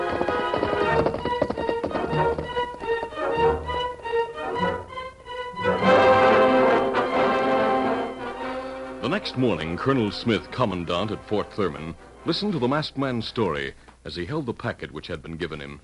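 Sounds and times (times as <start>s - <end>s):
horses galloping on a road during a pursuit: 0.0s - 3.8s
loud dramatic orchestral music: 0.0s - 12.8s
speech: 9.2s - 15.8s.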